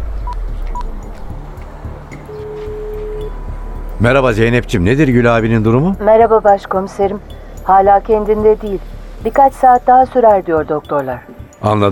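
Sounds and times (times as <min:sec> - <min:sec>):
long steady telephone tone: 0:02.3 - 0:03.6
speech: 0:04.0 - 0:11.9.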